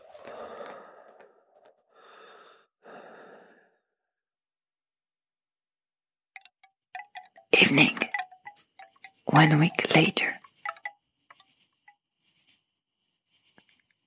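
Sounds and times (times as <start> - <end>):
person breathing slow airy breaths: 0.1 - 4.0, 10.4 - 14.0
speech: 7.6 - 8.1, 9.4 - 10.4.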